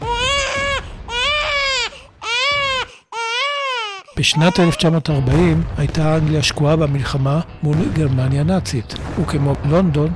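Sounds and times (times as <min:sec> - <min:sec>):
newborn baby crying at a maternity hospital in Liverpool: 0:00.0 - 0:05.2
speech: 0:04.2 - 0:10.1.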